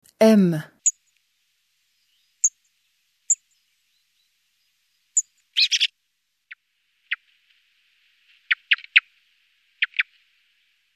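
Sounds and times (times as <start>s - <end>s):
speech: 0.3s - 0.7s
song thrush singing: 1.9s - 5.9s.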